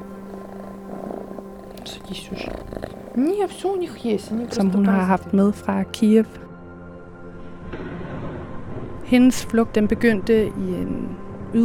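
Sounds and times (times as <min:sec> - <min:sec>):
soft breathy noises: 0:00.0 - 0:04.8
cat purring in a small seventh-floor room in Krakow: 0:00.0 - 0:06.4
speech: 0:01.8 - 0:06.4, 0:09.1 - 0:11.6.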